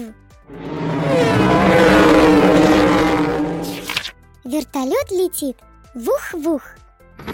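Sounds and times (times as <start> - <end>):
race car engine roaring: 0.5 - 4.1
speech: 5.0 - 6.8.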